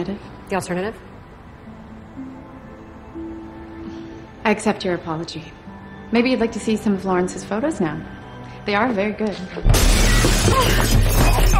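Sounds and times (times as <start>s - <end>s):
speech: 0.0s - 1.1s, 4.4s - 11.5s
window glass shattering from a thrown brick: 9.7s - 11.5s.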